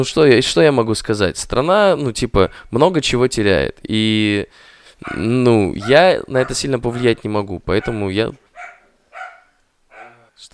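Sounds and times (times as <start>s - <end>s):
speech: 0.0s - 8.4s, 10.4s - 10.5s
dog barking: 5.0s - 10.3s.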